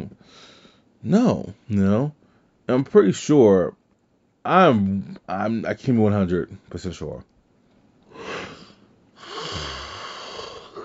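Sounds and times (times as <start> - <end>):
speech: 1.0 - 3.8, 4.4 - 7.3
person yawning with a low groan: 8.1 - 10.8.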